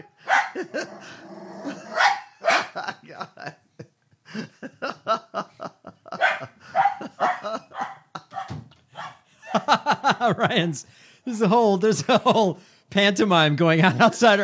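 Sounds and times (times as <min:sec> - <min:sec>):
laughter: 0:00.0 - 0:08.4, 0:09.4 - 0:14.4
dog barking: 0:00.2 - 0:00.7, 0:01.9 - 0:02.9, 0:06.1 - 0:09.6
dog growling: 0:00.6 - 0:02.0
speech: 0:10.2 - 0:14.4.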